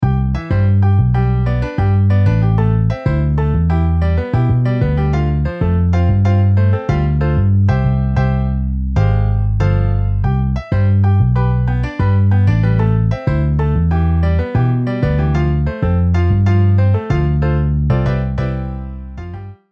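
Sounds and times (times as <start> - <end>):
MIDI piano and bass: 0.0 - 19.7.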